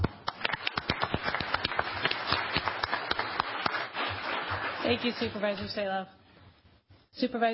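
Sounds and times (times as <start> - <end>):
audience applause: 0.0 - 5.0
speech: 4.9 - 6.2, 7.2 - 7.5.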